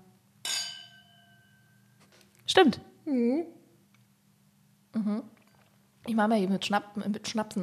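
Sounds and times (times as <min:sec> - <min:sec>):
wine glasses clinking in a toast: 0:00.4 - 0:01.8
speech: 0:02.6 - 0:03.6, 0:05.0 - 0:05.4, 0:06.0 - 0:07.6.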